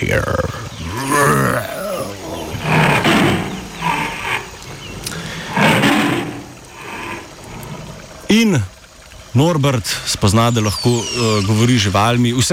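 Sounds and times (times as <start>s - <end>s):
speech: 0.0s - 1.4s, 9.4s - 12.5s
bear roaring: 0.2s - 8.3s.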